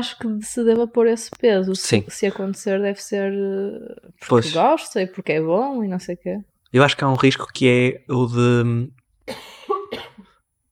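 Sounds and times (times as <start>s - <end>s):
speech: 0.0s - 10.1s
person coughing: 9.3s - 10.4s.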